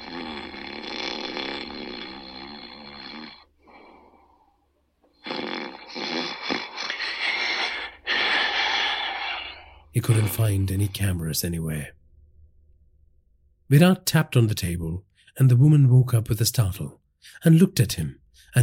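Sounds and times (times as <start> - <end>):
old woman snoring asleep in a chair: 0.0 - 4.6, 5.2 - 10.2
speech: 10.0 - 12.0, 13.7 - 18.6.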